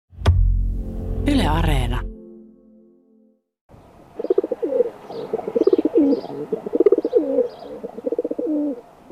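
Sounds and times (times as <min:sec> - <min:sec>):
speech: 0:01.2 - 0:02.1
feral pigeon cooing: 0:04.2 - 0:09.1.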